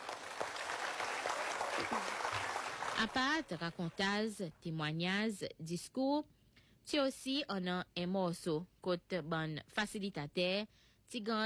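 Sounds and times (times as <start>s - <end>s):
faint audience applause at a ceremony: 0.0s - 4.0s
speech: 3.0s - 11.4s.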